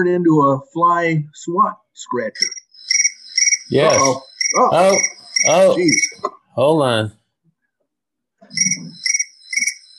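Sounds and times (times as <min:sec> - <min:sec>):
speech: 0:00.0 - 0:02.6, 0:03.7 - 0:07.2, 0:08.5 - 0:09.0
crickets chirping: 0:02.4 - 0:06.3, 0:08.5 - 0:09.9.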